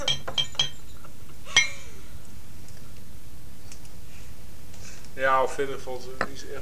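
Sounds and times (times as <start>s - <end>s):
glass bottles clinking: 0.0s - 1.9s
speech: 5.2s - 6.6s.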